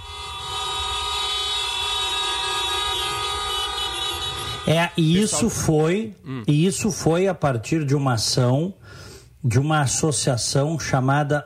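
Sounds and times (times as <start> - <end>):
many car horns honking at a protest in front of a judge's house: 0.0 - 6.0
low rumble of traffic: 0.0 - 11.4
speech: 4.7 - 11.4.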